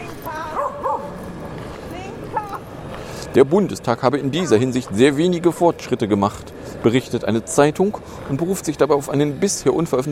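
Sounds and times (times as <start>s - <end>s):
steady murmur: 0.0s - 10.0s
dog barking in short high yips: 0.5s - 1.1s
speech: 3.3s - 10.0s.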